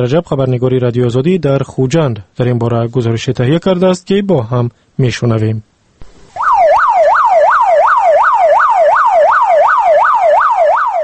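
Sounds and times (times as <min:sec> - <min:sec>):
speech: 0:00.0 - 0:05.7
private emergency ambulance siren yelping while driving in Khujand Tajikistan: 0:06.3 - 0:11.0.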